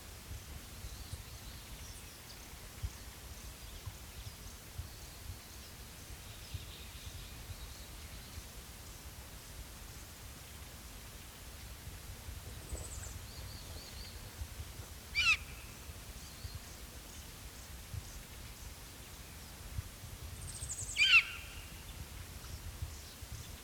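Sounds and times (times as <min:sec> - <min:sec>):
steady background hiss: 0:00.0 - 0:23.6
Variable hawk Buteo polyosoma harsh calls: 0:15.1 - 0:15.5, 0:21.0 - 0:21.6.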